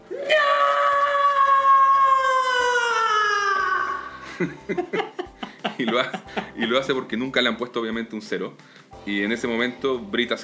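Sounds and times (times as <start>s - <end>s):
woman screaming in horror: 0.1s - 4.2s
laughter: 4.2s - 7.0s
speech: 4.4s - 5.2s, 5.8s - 10.4s.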